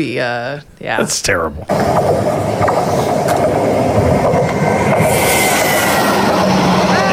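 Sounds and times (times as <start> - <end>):
speech: 0.0 - 3.8
train rumbling past: 1.7 - 7.1
metallic squeal: 5.0 - 7.1.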